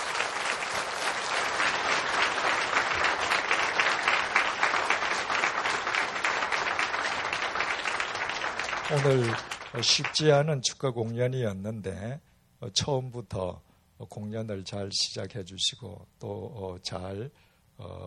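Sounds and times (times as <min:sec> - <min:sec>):
audience applause in thanks to a choir: 0:00.0 - 0:10.3
speech: 0:08.9 - 0:18.0.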